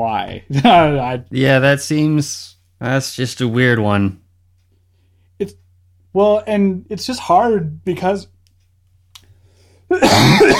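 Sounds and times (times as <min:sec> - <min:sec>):
speech: 0:00.0 - 0:04.2, 0:05.4 - 0:08.3, 0:09.9 - 0:10.5
loud harsh raspy cough: 0:09.9 - 0:10.5.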